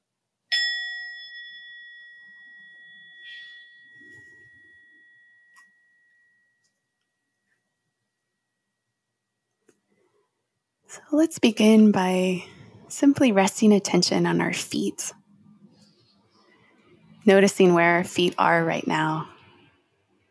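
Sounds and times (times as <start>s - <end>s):
meditation bell struck with a bright metallic tone: 0.5s - 7.6s
speech: 10.9s - 15.2s, 17.2s - 19.3s.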